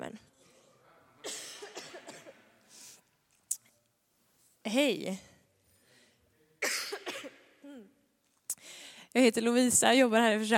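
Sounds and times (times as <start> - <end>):
speaker coughing before talking to a church audience: 1.2 - 2.5, 6.6 - 7.9
speech: 4.7 - 5.3, 9.2 - 10.5.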